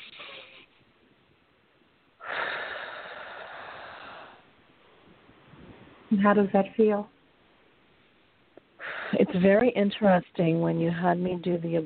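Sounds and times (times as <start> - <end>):
person taking a deep breath during a guided healing session: 2.2 - 4.5, 8.8 - 9.3
speech: 6.1 - 7.1, 9.3 - 11.8.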